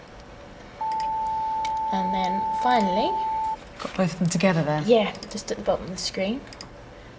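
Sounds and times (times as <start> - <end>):
steady synthesized sine tone of the second harmonic: 0.8 - 3.6
speech: 1.9 - 6.6.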